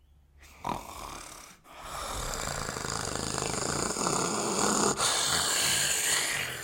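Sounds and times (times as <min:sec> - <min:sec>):
person imitating a man's rasping snore through nose and throat: 0:00.5 - 0:06.6.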